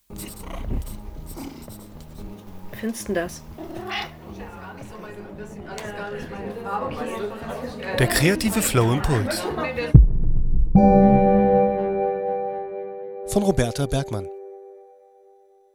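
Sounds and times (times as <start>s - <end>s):
speech: 2.8s - 4.1s, 5.7s - 10.0s, 13.4s - 14.4s
podcast musical jingle: 10.8s - 15.4s.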